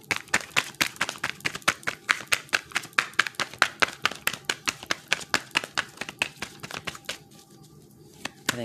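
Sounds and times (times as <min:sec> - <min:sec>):
thick deck of cards shuffling: 0:00.1 - 0:08.6.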